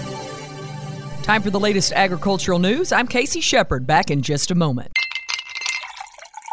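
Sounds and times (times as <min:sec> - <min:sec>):
speech: 0:01.3 - 0:05.0
cool water poured into a glass: 0:05.0 - 0:06.5.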